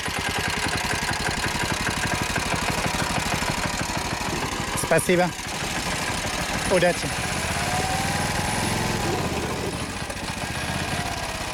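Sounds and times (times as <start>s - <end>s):
three-wheeled moped engine running: 0.0s - 11.5s
speech: 4.9s - 5.5s, 6.7s - 7.3s.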